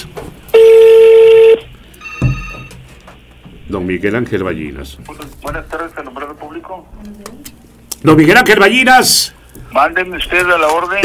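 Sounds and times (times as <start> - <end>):
steady single-pitch telephone tone: 0.5 - 2.8
speech: 3.7 - 11.0.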